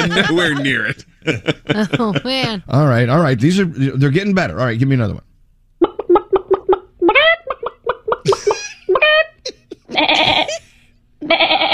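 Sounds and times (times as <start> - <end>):
laughter: 0.0 - 2.6, 8.3 - 10.8
speech: 0.0 - 5.3
quick clucks of barnyard animals: 5.8 - 10.6
bleating cries of barnyard animals: 9.0 - 10.6, 11.2 - 11.7
harsh whinny-like burst of a barnyard animal: 10.0 - 10.6, 11.2 - 11.7.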